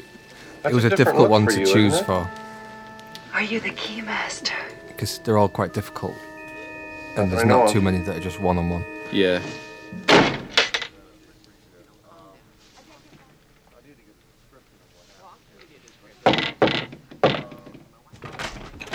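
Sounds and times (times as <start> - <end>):
quiet film music: 0.0 - 16.3
laughter: 0.6 - 2.4, 5.0 - 6.2, 7.2 - 9.5
speech: 0.6 - 2.4, 3.4 - 6.3, 7.2 - 10.1
door opening with heavy thunks: 10.0 - 11.0, 16.3 - 18.9
knocks and bangs: 16.3 - 18.9.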